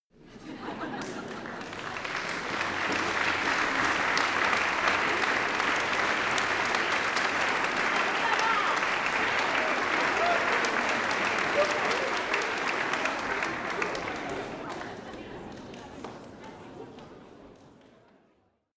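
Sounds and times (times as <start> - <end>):
laughter: 0.2 - 17.8
medium audience applause in a church: 0.6 - 18.1.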